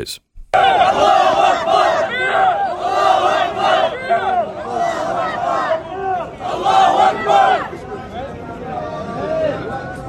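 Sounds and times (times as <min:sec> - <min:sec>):
speech: 0:00.0 - 0:01.2
large crowd of activists shouting rhythmic chants in Teaneck New York: 0:00.6 - 0:08.0.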